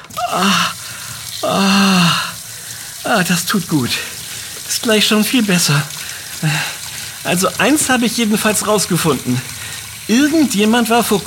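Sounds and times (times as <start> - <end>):
cold tap water running into a sink: 0.0 - 11.2
person with burned fingers groaning sighs: 0.1 - 2.4
speech: 0.3 - 0.8, 1.4 - 2.0, 3.2 - 4.1, 4.7 - 9.5, 10.1 - 11.2.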